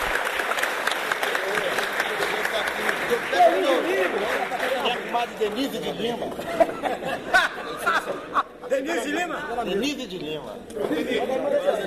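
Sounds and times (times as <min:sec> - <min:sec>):
audience applause: 0:00.0 - 0:06.2
faint murmur of voices: 0:01.1 - 0:11.8
laughter: 0:01.5 - 0:09.4
speech: 0:03.1 - 0:11.8.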